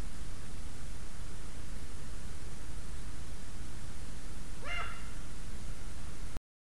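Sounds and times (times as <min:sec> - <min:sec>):
constant hissing background noise: 0:00.0 - 0:06.4
Eurasian eagle-owl Bubo bubo uttering a rasping call: 0:04.6 - 0:05.2.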